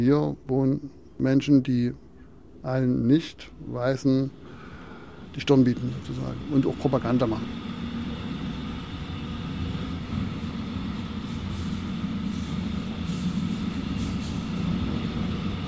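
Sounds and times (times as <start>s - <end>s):
speech: 0.0s - 2.0s, 2.6s - 4.5s, 5.4s - 7.7s
moving train rumbling heard from inside a carriage: 3.9s - 15.6s.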